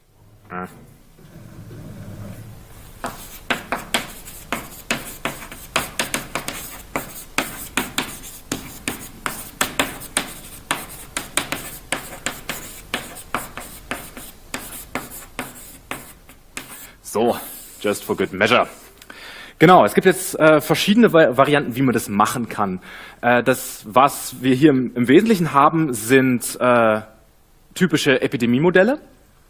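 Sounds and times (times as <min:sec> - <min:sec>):
speech: 0:00.5 - 0:00.9, 0:17.8 - 0:18.8, 0:19.6 - 0:27.1, 0:27.7 - 0:29.2
pen strokes handwriting a title: 0:03.0 - 0:18.8.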